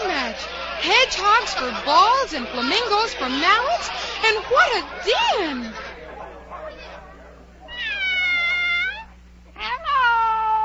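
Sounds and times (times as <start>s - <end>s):
laughter: 0.0s - 7.2s
bustle: 0.0s - 10.6s
murmured voices: 0.0s - 10.6s
speech: 0.8s - 5.8s
cat meowing: 7.7s - 10.6s.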